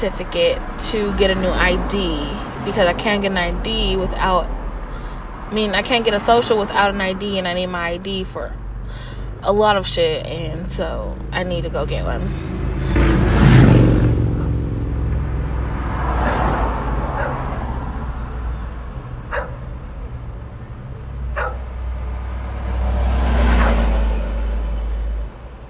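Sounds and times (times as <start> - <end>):
speech: 0.0 - 4.6, 5.5 - 12.9
vehicles swooshing past: 0.0 - 9.4, 11.2 - 25.6
road traffic rumbling: 0.0 - 25.6.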